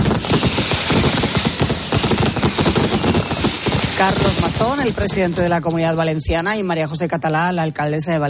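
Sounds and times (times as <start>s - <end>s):
mascletà firecracker detonations on the banks of the Manzanares in Madrid: 0.0s - 6.6s
speech: 4.0s - 8.2s.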